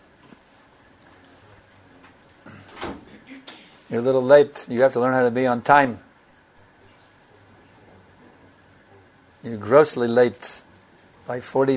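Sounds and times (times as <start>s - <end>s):
door swinging shut with a thud and rattle: 2.6s - 3.6s
speech: 3.9s - 6.0s, 9.5s - 10.7s, 11.3s - 11.7s.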